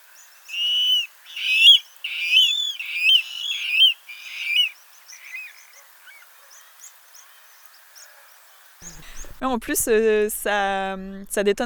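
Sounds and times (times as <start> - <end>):
water rail shrill squealing call: 0.5 - 5.4
speech: 9.4 - 11.6.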